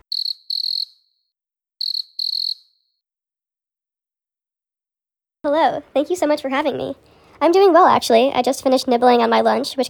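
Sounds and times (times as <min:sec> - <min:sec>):
field cricket chirping: 0:00.1 - 0:00.9, 0:01.8 - 0:02.6
speech: 0:05.4 - 0:09.8.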